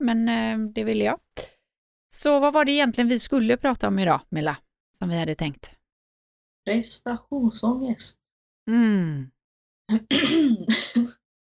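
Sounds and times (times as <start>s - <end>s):
speech: 0.0s - 1.5s, 2.1s - 5.8s, 6.6s - 11.2s
woman humming: 8.7s - 9.3s
woman clearing her throat: 9.9s - 11.2s.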